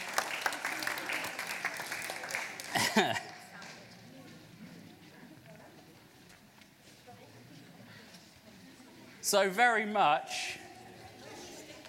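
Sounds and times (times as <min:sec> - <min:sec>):
audience applause: 0:00.0 - 0:03.6
speech: 0:02.8 - 0:03.3, 0:09.3 - 0:10.6.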